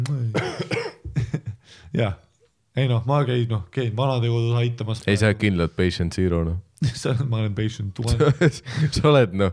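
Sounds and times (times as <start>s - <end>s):
speech: 0.0s - 0.7s, 1.9s - 2.2s, 2.8s - 9.5s
harsh coughs: 0.3s - 1.2s
laughter: 8.0s - 9.1s.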